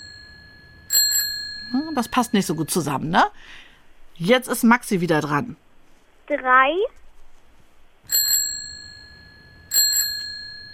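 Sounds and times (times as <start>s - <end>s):
bicycle bell ringing: 0.0s - 3.0s, 8.1s - 10.7s
speech: 1.7s - 5.6s, 6.3s - 7.0s.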